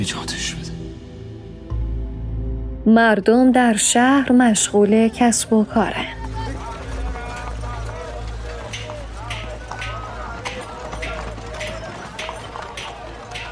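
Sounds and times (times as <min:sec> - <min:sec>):
speech: 0:00.0 - 0:00.6, 0:02.8 - 0:06.2
horse pulling a carriage clip-clopping through a city street: 0:05.8 - 0:13.4.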